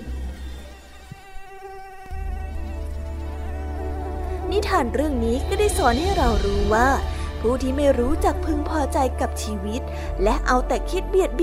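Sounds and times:
mosquito buzzing: 0.0s - 6.0s
speech: 4.6s - 11.4s.

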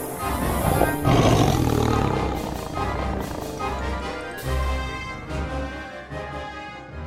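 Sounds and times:
lion roaring while chasing a green snake: 0.2s - 5.4s.

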